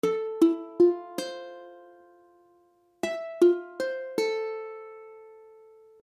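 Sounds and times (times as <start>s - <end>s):
Fmaj7 ukulele chord: 0.0s - 6.0s.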